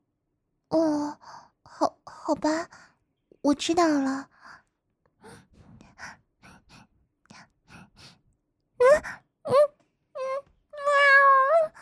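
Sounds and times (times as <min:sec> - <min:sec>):
speech: 0:01.8 - 0:04.3
soft breathy sniffs and gasps: 0:04.4 - 0:08.3
voice imitating a cat meowing: 0:08.8 - 0:11.8.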